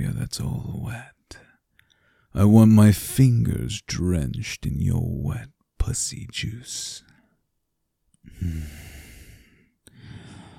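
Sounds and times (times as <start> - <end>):
speech: 0.0 - 1.4, 2.3 - 7.1, 8.2 - 8.9
heavy breathing with long loud breathy exhales: 8.2 - 10.5.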